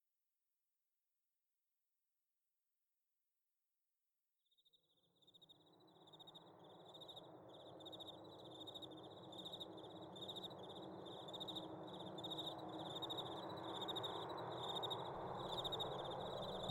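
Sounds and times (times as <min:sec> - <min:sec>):
crickets chirping slowly at night: 0:05.2 - 0:16.7.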